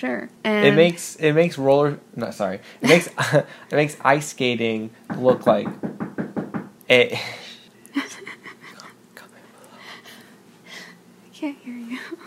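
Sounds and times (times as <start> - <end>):
speech: 0.0 - 6.0, 6.9 - 8.2
sharp knock on a door: 5.1 - 6.8.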